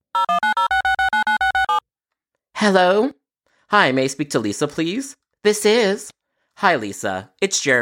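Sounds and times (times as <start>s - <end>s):
short touch-tone beeps dialing a number: 0.2s - 1.8s
speech: 2.6s - 7.8s.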